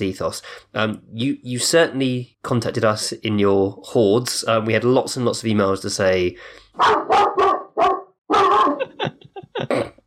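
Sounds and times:
speech: 0:00.0 - 0:07.4
dog barking loudly: 0:06.8 - 0:08.9
laughter: 0:08.5 - 0:09.9.

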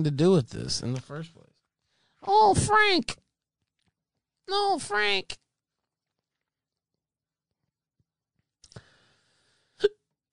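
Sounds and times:
speech: 0:00.0 - 0:01.5, 0:02.2 - 0:03.2, 0:04.5 - 0:05.4
hiccups: 0:09.8 - 0:10.3.

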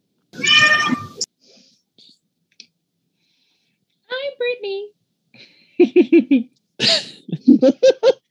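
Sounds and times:
human voice imitating a cat meow: 0:00.4 - 0:01.2
speech: 0:06.0 - 0:08.2.

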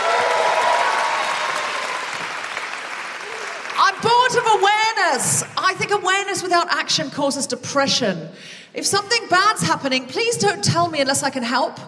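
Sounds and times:
crowd clapping: 0:00.0 - 0:05.8
speech: 0:05.1 - 0:11.8.

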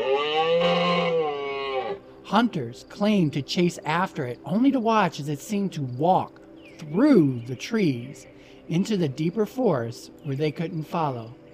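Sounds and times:
loud bellowing animal roar: 0:00.0 - 0:02.0
speech: 0:02.3 - 0:11.4.

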